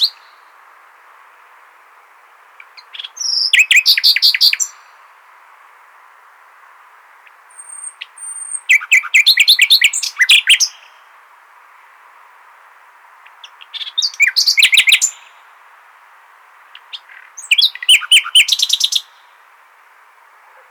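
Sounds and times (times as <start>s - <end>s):
common nightingale singing, Luscinia megarhynchos: 0.0s - 5.2s, 6.4s - 11.2s, 13.0s - 15.6s, 16.6s - 20.6s.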